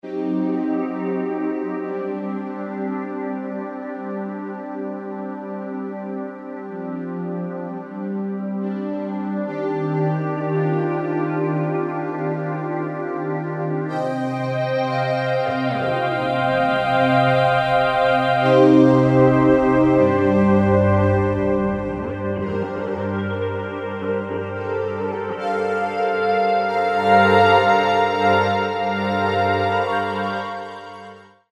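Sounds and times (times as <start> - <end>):
synthesizer pad on a Kurzweil K2000: 0.0 - 31.5.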